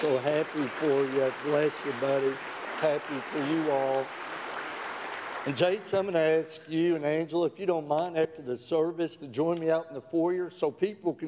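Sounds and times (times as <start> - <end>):
man speaking warmly into a microphone: 0.0 - 4.1, 5.4 - 11.2
speech: 0.0 - 4.2, 5.4 - 11.2
audience applauding: 0.0 - 6.4.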